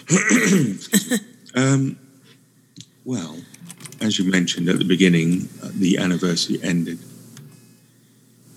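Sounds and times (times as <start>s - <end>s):
person coughing: 0.0s - 1.3s
speech: 0.1s - 2.0s, 3.1s - 7.2s.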